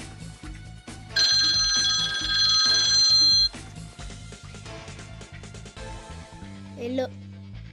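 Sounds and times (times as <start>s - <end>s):
telephone ringing with bright trilling electronic tone: 1.2s - 3.6s.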